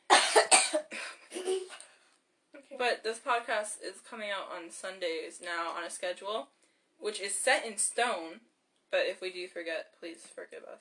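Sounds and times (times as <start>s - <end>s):
harsh raspy coughing: 0.1s - 1.6s
speech: 2.8s - 10.7s.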